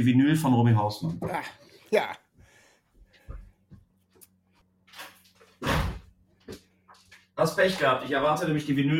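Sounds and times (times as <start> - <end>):
speech: 0.0 - 2.2, 7.4 - 8.9
door opening and closing: 4.8 - 6.2.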